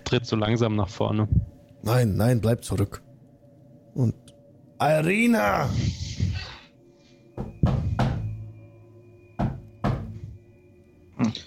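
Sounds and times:
speech: 0.1 - 3.0, 4.0 - 6.0
knocking on a door: 7.4 - 8.3, 9.4 - 10.3.

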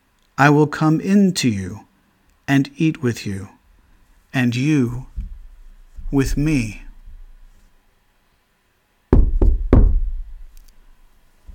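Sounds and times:
speech: 0.4 - 1.9, 2.5 - 3.6, 4.3 - 5.1, 6.1 - 6.8
firm knocking on a wooden door: 9.1 - 10.4.

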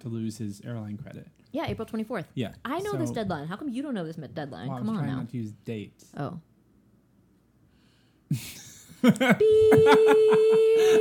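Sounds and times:
speech: 0.0 - 6.5, 8.3 - 10.9
laughter: 8.3 - 10.9
censor beep tone: 9.4 - 10.9.

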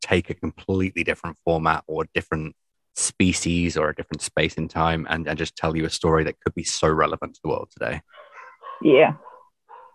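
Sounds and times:
speech: 0.1 - 8.2, 8.8 - 9.3
dog barking: 8.2 - 9.9.

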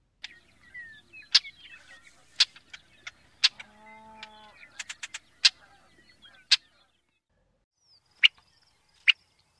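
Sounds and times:
Brewer's blackbird giving sharp dry chack call notes: 1.3 - 6.9
low mooing: 3.5 - 4.7.

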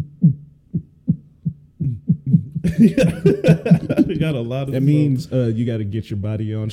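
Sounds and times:
fast heartbeat thumping in lub-dub pairs: 0.0 - 4.4
laughter: 2.6 - 5.3
speech: 2.7 - 6.7.

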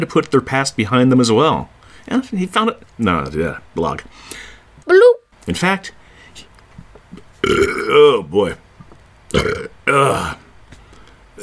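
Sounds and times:
speech: 0.0 - 6.5, 7.4 - 8.6, 9.3 - 10.4
burps: 7.1 - 8.1, 9.3 - 10.4.

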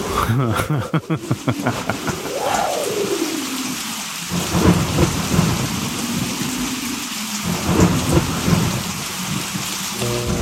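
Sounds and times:
person laughing and murmuring: 0.0 - 2.7
steady rain: 0.0 - 10.4
speech: 0.3 - 2.3, 4.3 - 5.3
rolling rumble of thunder: 1.3 - 10.4.

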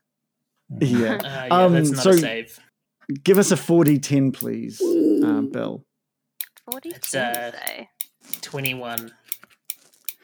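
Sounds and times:
speech: 0.7 - 5.9, 6.7 - 9.2
pen clicking: 6.4 - 10.2.

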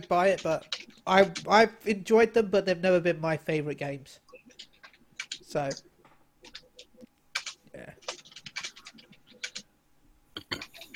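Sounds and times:
keys struck hard on a computer keyboard: 0.0 - 1.5, 4.3 - 5.8, 6.4 - 9.7, 10.4 - 10.9
speech: 0.1 - 4.2, 5.5 - 5.9.

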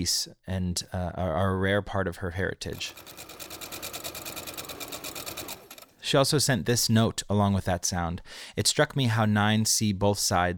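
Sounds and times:
speech: 0.0 - 3.5, 6.1 - 10.5
sewing machine stitching a patchwork quilt: 2.8 - 6.0.

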